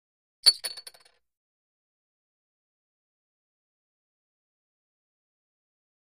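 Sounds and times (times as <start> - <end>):
poker chip dropping in casino games: 0.5 - 1.2.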